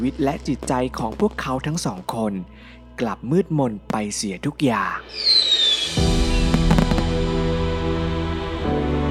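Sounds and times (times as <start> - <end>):
speech: 0.0 - 6.2
fireworks bursting in the sky: 5.0 - 8.4
sharp cracks of fireworks: 5.3 - 7.7
dense rumbling din of fireworks: 6.0 - 9.0.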